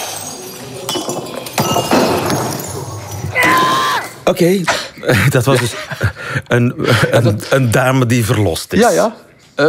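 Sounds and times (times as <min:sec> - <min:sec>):
clinking debris: 0:00.0 - 0:03.7
plates, vases, computers, phones and coffee machines smashed in a rage room: 0:00.9 - 0:04.0
speech: 0:04.3 - 0:09.6.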